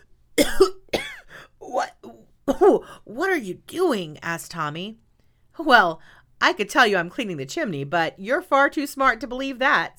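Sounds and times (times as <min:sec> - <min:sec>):
person coughing from flour: 0:00.4 - 0:02.8
speech: 0:02.7 - 0:05.0, 0:05.6 - 0:09.9.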